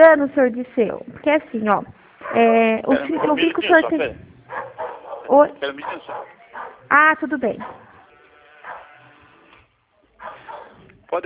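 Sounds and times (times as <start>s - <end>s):
speech: 0.0s - 4.3s, 5.3s - 7.9s
dog barking: 2.2s - 3.5s, 4.4s - 6.9s, 7.6s - 8.0s, 8.6s - 9.0s, 10.2s - 10.9s.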